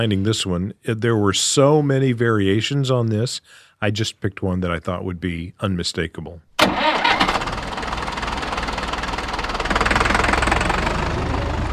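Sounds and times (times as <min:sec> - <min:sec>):
speech: 0:00.0 - 0:07.0
manure spreader engine running: 0:07.4 - 0:11.7.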